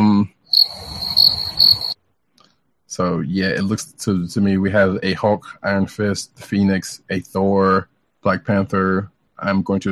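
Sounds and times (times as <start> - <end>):
crickets chirping: 0.4 - 2.0
speech: 3.0 - 9.9.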